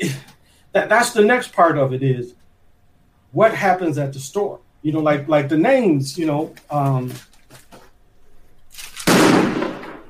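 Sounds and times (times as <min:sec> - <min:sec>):
speech: 0:00.0 - 0:02.4, 0:03.3 - 0:07.3
firework bang outside: 0:09.1 - 0:10.0.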